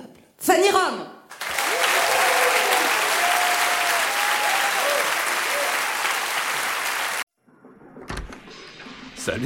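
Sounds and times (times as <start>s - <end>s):
loud dense applause from a large crowd: 1.3s - 7.3s
speech: 9.3s - 9.4s.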